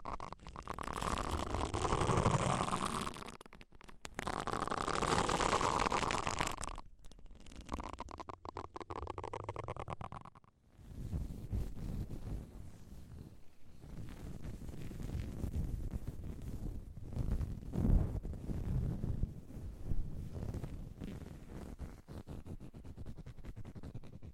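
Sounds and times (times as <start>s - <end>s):
ear cleaning rubbing and scratching: 0.0s - 24.3s.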